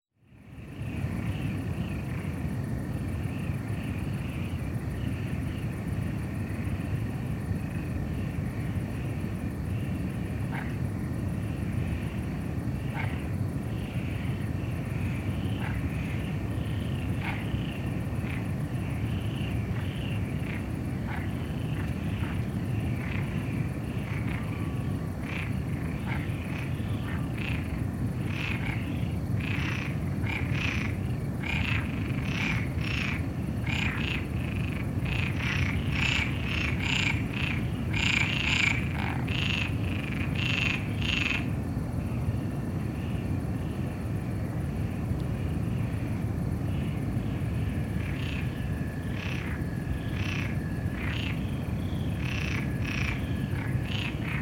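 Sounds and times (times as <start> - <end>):
crickets chirping: 0.1 - 54.4
frogs croaking: 0.2 - 54.4.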